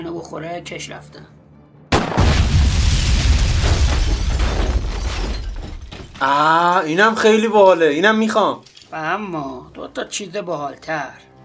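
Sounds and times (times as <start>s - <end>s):
speech: 0.0s - 1.4s, 6.2s - 11.3s
car petrol explosion: 1.9s - 6.2s.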